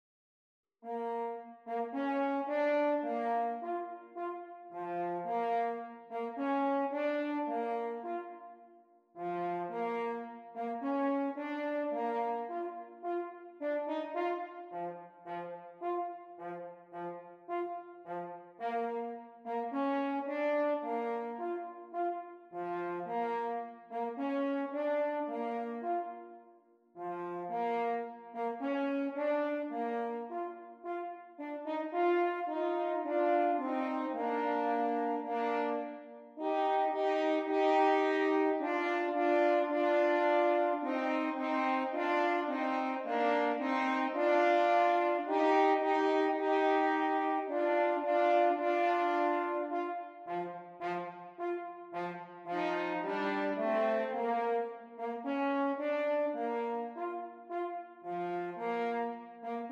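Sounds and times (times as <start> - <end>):
horns duet: 0.8 - 8.6, 9.2 - 59.7.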